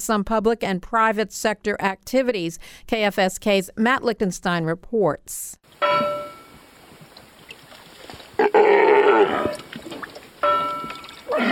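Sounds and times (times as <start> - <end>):
speech: 0.0 - 6.3, 8.4 - 9.7
Steller sea lions bellowing: 8.4 - 9.7, 11.2 - 11.5.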